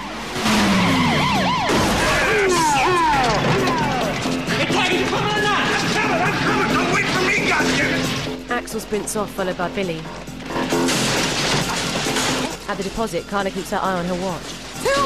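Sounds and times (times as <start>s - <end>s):
car tire squeals while reversing: 0.0s - 7.0s
heavy crunch of a car crashing into another vehicle: 0.0s - 8.4s, 10.4s - 12.7s
loud dramatic music: 0.0s - 15.0s
speech: 8.7s - 10.8s, 12.7s - 15.0s.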